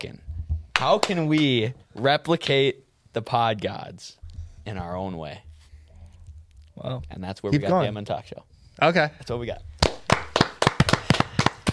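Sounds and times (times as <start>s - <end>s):
speech: 0.0s - 0.2s, 0.8s - 5.5s, 6.8s - 9.7s
sharp hand claps: 0.7s - 1.5s, 9.8s - 11.7s.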